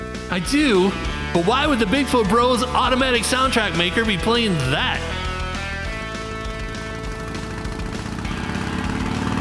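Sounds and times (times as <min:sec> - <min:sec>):
speech: 0:00.3 - 0:05.2
motorcycle engine droning: 0:01.0 - 0:09.3.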